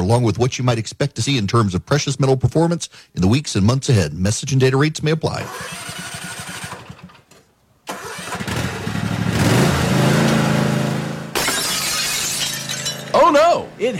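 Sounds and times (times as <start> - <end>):
speech: 0.1 - 6.2, 13.8 - 13.9
small lawnmower engine starting and running: 5.3 - 11.3
car side window glass shattering: 11.3 - 13.5.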